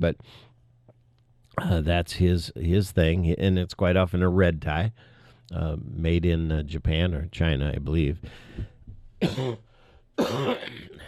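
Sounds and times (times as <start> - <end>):
speech: 0.0 - 0.5, 1.6 - 10.9
husky raspy coughs: 9.2 - 9.6, 10.2 - 11.0.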